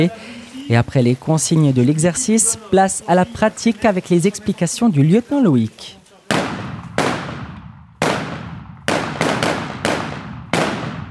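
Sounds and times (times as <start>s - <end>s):
speech: 0.0s - 6.0s
rapid single gunshots fired during a military exercise: 6.3s - 11.0s.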